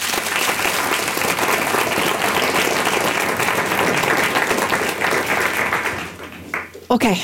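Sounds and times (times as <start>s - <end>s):
room full of audience members clapping: 0.0s - 7.1s
speech: 6.9s - 7.2s.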